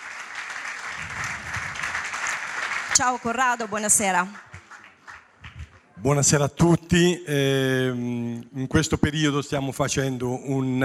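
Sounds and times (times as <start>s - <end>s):
audience applauding at an evening event with a stage: 0.0s - 6.0s
speech: 3.0s - 4.5s, 6.0s - 10.8s.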